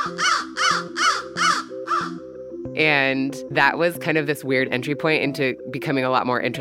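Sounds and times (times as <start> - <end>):
loud harsh crow caws: 0.0 - 2.3
speech: 2.8 - 6.5.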